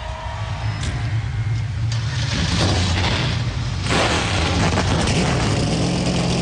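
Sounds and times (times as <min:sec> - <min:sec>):
field of race car engines firing up at a race start: 0:00.0 - 0:06.4.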